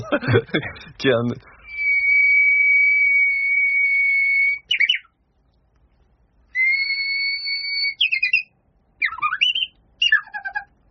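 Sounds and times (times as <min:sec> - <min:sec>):
speech: 0:00.0 - 0:01.5
Japanese bush warbler singing: 0:01.6 - 0:05.2, 0:06.5 - 0:10.7.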